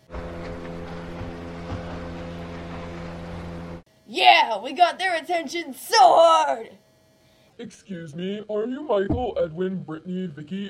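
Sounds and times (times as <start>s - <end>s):
boat motor droning: 0.0s - 3.9s
speech: 4.1s - 6.8s, 7.6s - 10.6s.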